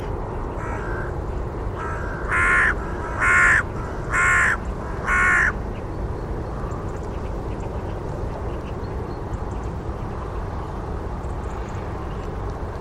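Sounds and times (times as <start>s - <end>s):
steady low background rumble: 0.0s - 12.7s
bird giving harsh cawing calls: 0.5s - 1.2s, 1.8s - 5.6s.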